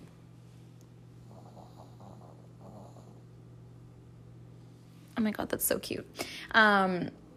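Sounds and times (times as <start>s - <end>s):
low electrical hum: 0.0s - 7.3s
dog snoring: 1.2s - 3.4s
speech: 5.2s - 7.2s.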